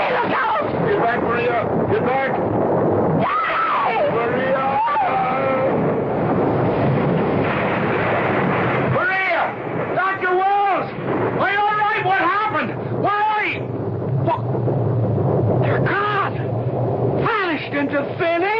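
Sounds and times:
thunder crash after lightning: 0:00.0 - 0:18.5
voices crying out: 0:03.2 - 0:05.8.

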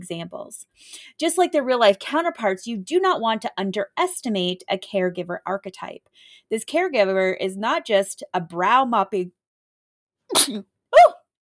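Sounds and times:
speech: 0:00.0 - 0:09.4, 0:10.3 - 0:11.2
person sneezing: 0:10.3 - 0:10.6.

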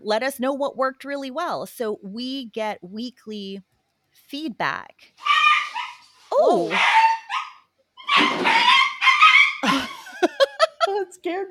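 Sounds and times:
speech: 0:00.0 - 0:05.4, 0:06.4 - 0:07.1, 0:08.2 - 0:08.8, 0:09.6 - 0:11.4
puppy barking: 0:05.2 - 0:09.6
laughter: 0:09.6 - 0:10.9.

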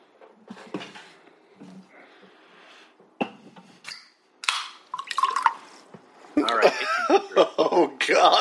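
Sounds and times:
cola soda fizzing: 0:04.9 - 0:05.8
cola with grapefruit essence being poured and mixed: 0:04.9 - 0:05.9
speech: 0:06.4 - 0:08.3.

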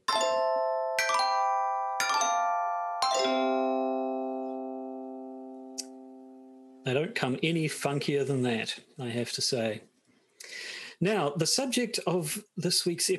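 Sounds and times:
short chime jingle of bright bell-like notes: 0:00.0 - 0:06.8
speech: 0:06.8 - 0:09.9, 0:11.0 - 0:13.1.

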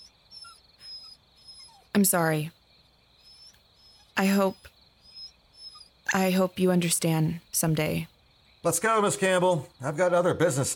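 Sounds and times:
puppy whimpering in high-pitched whines: 0:00.0 - 0:02.0, 0:03.2 - 0:05.9
speech: 0:02.0 - 0:02.6, 0:04.2 - 0:04.7, 0:06.1 - 0:10.7.

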